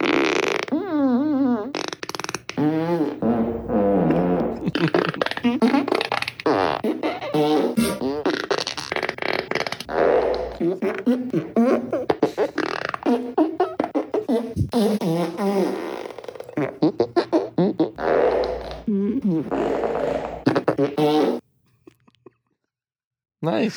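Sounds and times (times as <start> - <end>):
remix of recorded fart sounds: 0.0 - 21.4.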